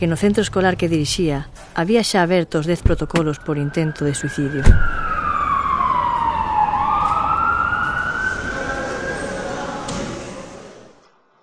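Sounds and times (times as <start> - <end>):
speech: 0.0 - 5.1
heavy road traffic rumble: 0.0 - 9.9
loud wailing sirens of police cars and ambulances: 2.9 - 10.2.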